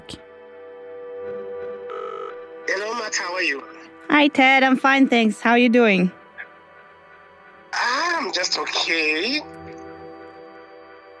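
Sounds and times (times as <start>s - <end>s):
electronic ringback tone over a phone line during an outgoing call: 1.9s - 2.4s
speech: 3.1s - 6.2s, 8.3s - 9.6s.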